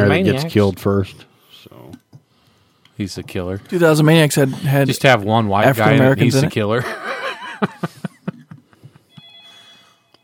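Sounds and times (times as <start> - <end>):
speech: 0.2 - 2.0, 3.0 - 8.0
laughter: 5.7 - 9.0
telephone ringing: 9.2 - 10.2.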